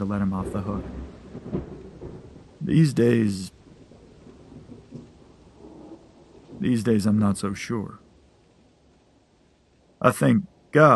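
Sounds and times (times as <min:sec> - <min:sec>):
speech: 0:00.0 - 0:01.7, 0:02.6 - 0:03.6, 0:06.6 - 0:08.0, 0:10.0 - 0:10.9
loud crash of thunder: 0:00.0 - 0:03.3, 0:03.9 - 0:06.7
steady rain: 0:00.0 - 0:10.9.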